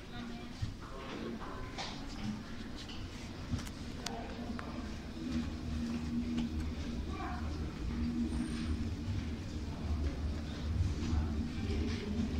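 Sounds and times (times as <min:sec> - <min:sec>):
metro ambience: 0:00.1 - 0:12.3.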